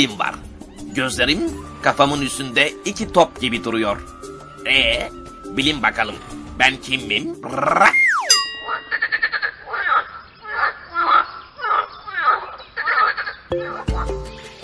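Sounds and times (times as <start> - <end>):
speech: 0.0 - 0.3, 1.0 - 8.0
rising whistle-like sweep: 1.6 - 7.0, 7.8 - 8.4
frog croaking: 7.3 - 14.4
sharp chime: 8.0 - 9.3.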